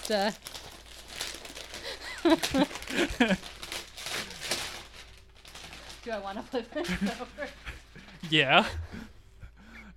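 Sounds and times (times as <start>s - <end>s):
Christmas wrapping paper around a painting ripping open: 0.0s - 7.8s
speech: 0.1s - 0.6s, 2.2s - 3.6s, 6.0s - 7.7s, 8.3s - 9.0s.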